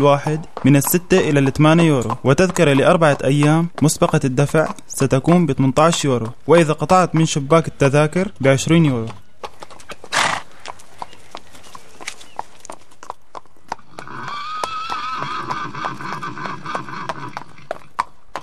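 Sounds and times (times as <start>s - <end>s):
speech: 0.0s - 9.2s
horse hooves clip-clopping at a horse festival in a park: 0.0s - 18.4s
horse whinnying at a horse festival in a park: 9.9s - 10.5s, 13.8s - 17.9s.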